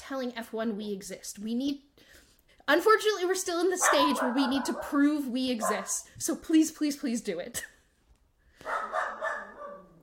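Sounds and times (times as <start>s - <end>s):
speech: 0.1s - 7.7s
dog barking: 3.8s - 6.0s, 8.6s - 10.0s.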